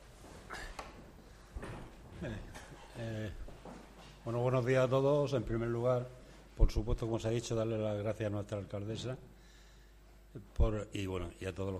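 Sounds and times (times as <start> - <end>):
chair knocks and thumps: 0.6 - 2.8
speech: 2.2 - 3.4, 4.2 - 9.3, 10.3 - 11.7.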